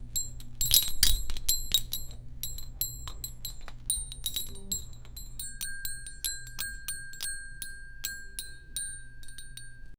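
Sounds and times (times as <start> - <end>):
light workshop ambience: 0.0 - 9.9.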